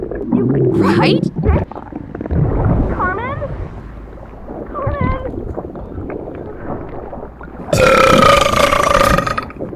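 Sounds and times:
speech: 0:00.2 - 0:03.3
loud drawn-out gurgling burp: 0:07.7 - 0:09.6.

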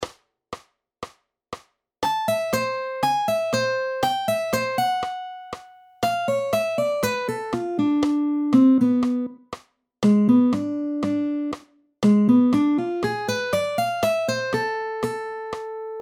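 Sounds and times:
easy gypsy jazz guitar licks in a minor key: 0:02.0 - 0:09.4, 0:10.0 - 0:16.0.

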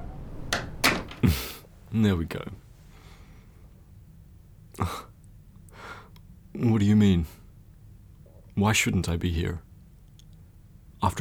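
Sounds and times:
door swinging shut: 0:00.4 - 0:01.3
speech: 0:01.9 - 0:02.6, 0:04.8 - 0:05.1, 0:06.6 - 0:07.4, 0:08.6 - 0:09.7, 0:11.0 - 0:11.2.

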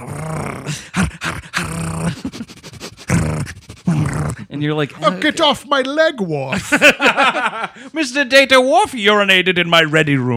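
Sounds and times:
person growling like a dog imitating an alien character: 0:00.0 - 0:04.5
speech: 0:04.6 - 0:10.3
laughter: 0:06.5 - 0:08.0.

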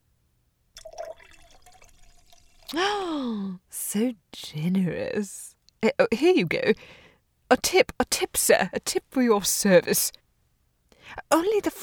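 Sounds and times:
wine glugging and splashing as it is poured into a glass: 0:00.8 - 0:02.8
speech: 0:02.7 - 0:10.2, 0:11.1 - 0:11.8.

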